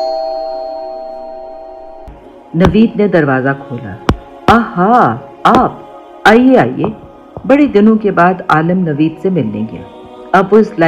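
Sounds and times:
bell ringing at the door of a library: 0:00.0 - 0:02.1
speech: 0:02.5 - 0:10.8.

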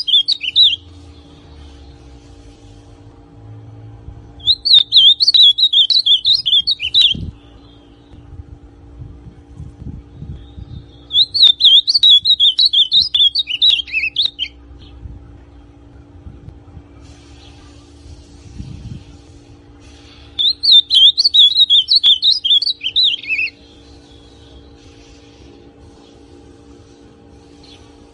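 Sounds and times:
ultramarine grosbeak warbling whistled song: 0:00.0 - 0:02.2, 0:04.4 - 0:08.2, 0:10.1 - 0:15.0, 0:19.8 - 0:26.2
low background hum: 0:00.0 - 0:28.1.

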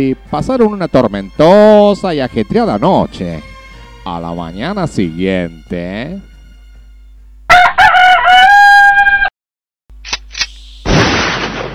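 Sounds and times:
speech: 0:00.0 - 0:06.3
rooster crowing: 0:06.5 - 0:09.3.

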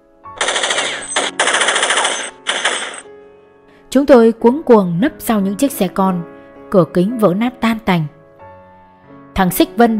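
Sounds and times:
machine gun fire: 0:00.4 - 0:03.1
speech: 0:03.9 - 0:08.2, 0:09.4 - 0:09.9.

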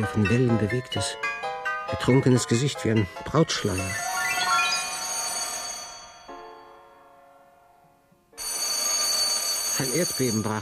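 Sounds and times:
speech: 0:00.0 - 0:04.1, 0:09.8 - 0:10.6
telephone bell ringing from a phone resting on a sleeper's stomach: 0:03.6 - 0:07.0, 0:08.4 - 0:10.6.

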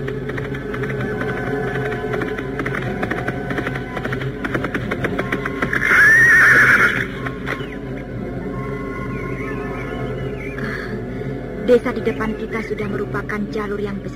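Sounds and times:
rumble of movement of horses being ridden: 0:00.0 - 0:14.1
horse being ridden hard whinnying: 0:05.7 - 0:07.2
speech: 0:11.7 - 0:14.1.

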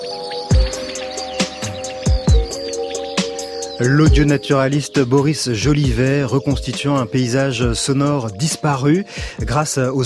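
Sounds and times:
common quail calling in a rapeseed field beside a small meadow: 0:00.0 - 0:04.4
crickets chirping in a rapeseed field beside a small meadow: 0:00.0 - 0:10.0
speech: 0:03.8 - 0:10.0.

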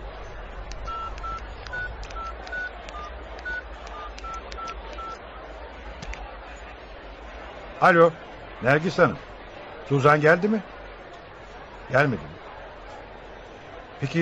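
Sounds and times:
touch-tone dialing on a telephone: 0:00.8 - 0:05.2
speech: 0:07.8 - 0:09.3, 0:09.9 - 0:10.7, 0:11.9 - 0:12.4, 0:14.0 - 0:14.1.

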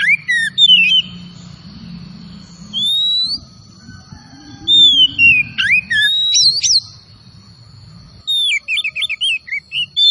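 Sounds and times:
Oriental magpie-robin singing vigorously with long pure whistles: 0:00.0 - 0:01.2, 0:02.7 - 0:03.5, 0:04.6 - 0:07.0, 0:08.3 - 0:10.0.

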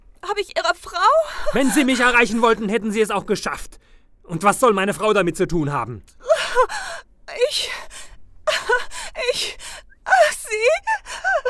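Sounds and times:
speech: 0:00.3 - 0:06.8
woman crying with gasping breaths, whimpers and sobs: 0:01.0 - 0:02.1, 0:06.2 - 0:11.4.

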